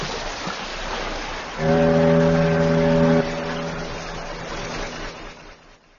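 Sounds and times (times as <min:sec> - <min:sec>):
water noise: 0:00.0 - 0:05.9
ship horn blast: 0:01.6 - 0:05.5
low rumble of ship engine: 0:01.6 - 0:05.7.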